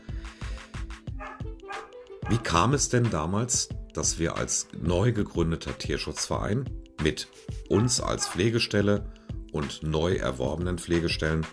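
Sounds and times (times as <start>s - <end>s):
dogs barking and yipping: 1.1s - 2.6s, 7.7s - 8.6s
speech: 2.3s - 11.5s.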